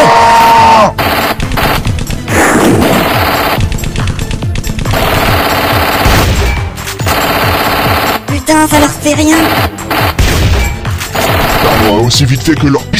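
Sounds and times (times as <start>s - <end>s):
rapid gunfire bursts from a loaded weapon in an ambush: 1.0s - 8.5s, 9.3s - 12.2s
speech: 8.5s - 9.8s, 12.0s - 12.9s.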